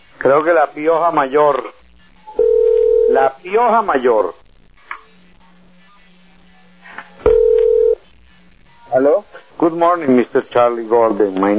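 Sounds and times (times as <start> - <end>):
speech: 0.2 - 1.8, 3.1 - 4.4, 8.9 - 11.5
telephone dial tone after a hang-up: 7.3 - 8.0.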